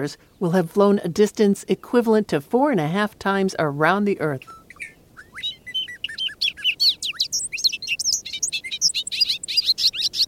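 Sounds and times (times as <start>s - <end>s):
speech: 0.0s - 4.6s
bobolink singing: 2.6s - 10.2s.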